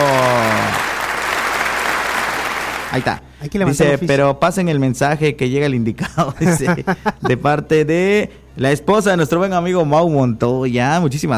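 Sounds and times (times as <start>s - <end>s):
studio audience applause and cheering: 0.0s - 3.2s
speech: 3.0s - 11.3s
laughter: 6.0s - 7.5s.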